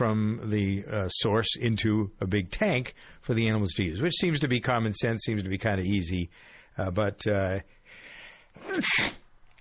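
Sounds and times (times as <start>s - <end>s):
speech: 0.0s - 7.8s, 8.6s - 9.2s
person sneezing: 8.6s - 9.3s.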